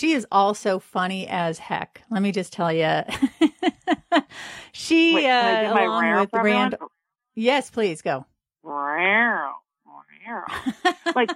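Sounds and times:
speech: 0:00.0 - 0:03.5, 0:04.1 - 0:09.6, 0:10.3 - 0:11.3
laughter: 0:03.1 - 0:06.8, 0:10.5 - 0:11.3
brief soft vocal sound: 0:05.0 - 0:06.8, 0:11.1 - 0:11.3
person imitating a cat meow: 0:05.2 - 0:06.8.

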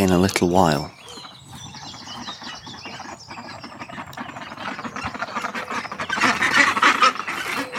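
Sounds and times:
flock of ducks quacking: 0:00.0 - 0:07.7
speech: 0:00.1 - 0:01.0.

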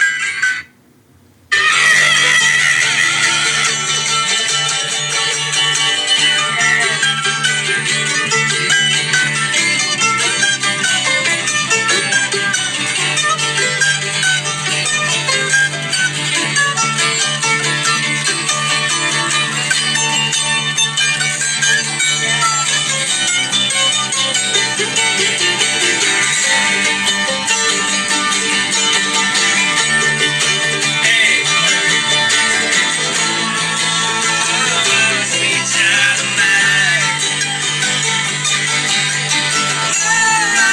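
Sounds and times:
mandolin playing an electric guitar rock riff: 0:01.5 - 0:40.7.

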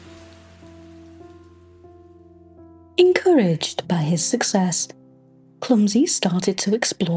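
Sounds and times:
gentle rain shower over a forest: 0:00.0 - 0:02.6
speech: 0:03.0 - 0:05.0, 0:05.7 - 0:07.1.

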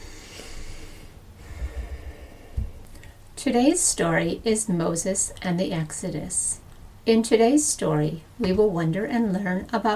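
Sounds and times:
slow deep breath taken to settle and prepare: 0:00.0 - 0:03.2
speech: 0:03.4 - 0:09.9.

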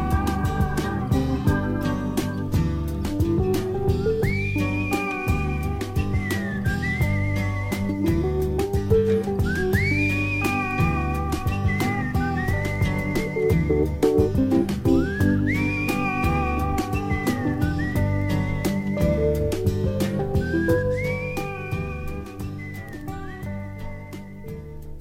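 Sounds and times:
full band accompaniment: 0:00.0 - 0:24.0
singer whistling a melody: 0:00.0 - 0:24.9.

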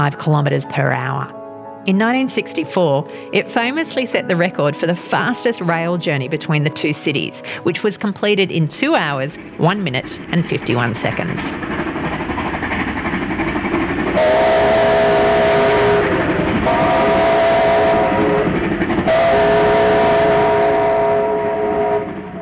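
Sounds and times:
speech: 0:00.0 - 0:11.9
steam locomotive rumbling and chugging: 0:02.0 - 0:22.4
steam locomotive whistle blasts: 0:14.2 - 0:22.4.

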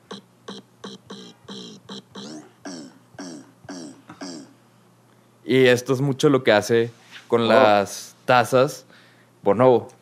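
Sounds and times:
pitched-down voice imitating a drum: 0:00.0 - 0:04.6
speech: 0:05.5 - 0:10.0.

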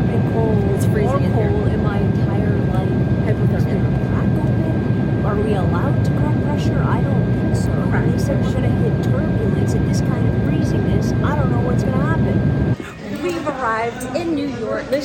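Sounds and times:
airplane cabin roar in flight: 0:00.0 - 0:15.0
faint whine in airplane cabin: 0:00.0 - 0:15.0
people talking in airplane cabin: 0:00.0 - 0:15.0.

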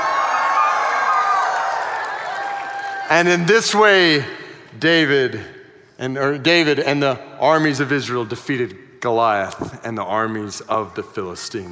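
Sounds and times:
large group of people shouting and cheering loudly: 0:00.0 - 0:03.5
speech: 0:03.1 - 0:11.7.

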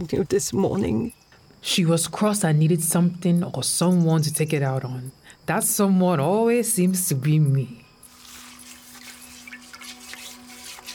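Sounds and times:
speech: 0:00.0 - 0:07.8
washing clothes by hand in water: 0:08.1 - 0:10.9.

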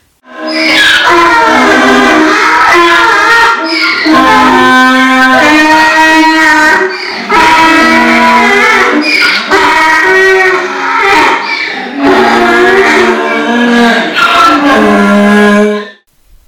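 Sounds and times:
herd of donkeys braying in a barn: 0:00.3 - 0:15.9.

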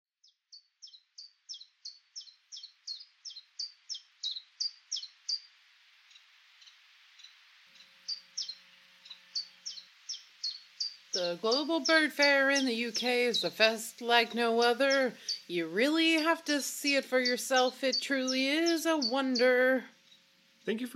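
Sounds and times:
Common Chiffchaff singing in England: 0:11.2 - 0:19.9
speech: 0:11.2 - 0:19.9, 0:20.7 - 0:20.9.

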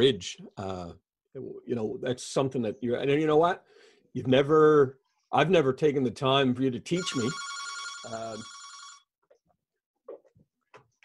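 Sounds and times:
speech: 0:00.0 - 0:08.6
telephone ringing with a buzzy electronic trill: 0:07.0 - 0:09.1.

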